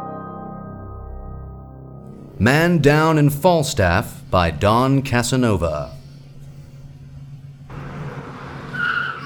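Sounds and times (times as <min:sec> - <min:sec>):
low car engine rumble: 0:01.1 - 0:09.2
speech: 0:02.4 - 0:06.0
car skidding to a stop with tire squeal: 0:07.7 - 0:09.2.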